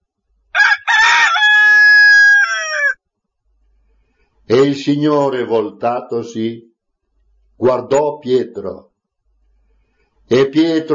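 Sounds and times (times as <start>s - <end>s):
rooster crowing: 0.5s - 3.0s
speech: 4.5s - 6.7s, 7.6s - 8.9s, 10.3s - 10.9s.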